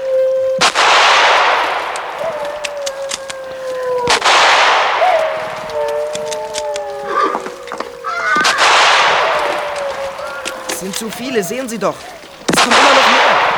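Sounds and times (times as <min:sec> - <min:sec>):
high wavering cries of attacking wolves: 0:00.0 - 0:13.5
gunshots fired at attacking wolves: 0:00.6 - 0:02.0, 0:04.1 - 0:05.4, 0:08.3 - 0:09.7, 0:12.5 - 0:13.5
speech: 0:11.0 - 0:13.0.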